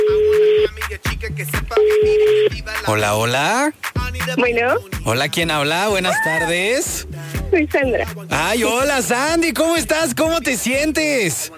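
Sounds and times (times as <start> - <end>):
telephone dialing tones and clicks: 0.0 - 0.8, 1.7 - 2.6
speech: 2.9 - 11.5.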